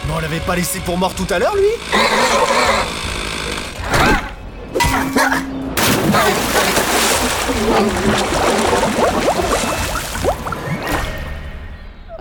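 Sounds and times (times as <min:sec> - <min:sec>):
speech: 0:00.1 - 0:03.6, 0:04.7 - 0:10.4
video game chainsaw revving: 0:01.1 - 0:03.9.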